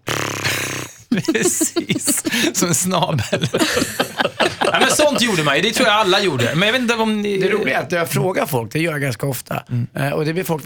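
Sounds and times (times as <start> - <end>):
person imitating a man peeing with a buzzing blow of the lips: 0.0 - 2.4
laughter: 0.5 - 7.9
speech: 1.2 - 10.6.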